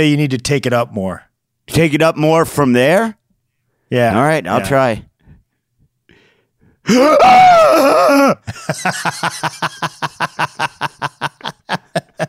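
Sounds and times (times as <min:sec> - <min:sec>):
speech: 0:00.0 - 0:03.2, 0:03.9 - 0:05.1, 0:06.8 - 0:12.2
woman shrieking: 0:06.9 - 0:08.4
laughter: 0:08.4 - 0:12.2.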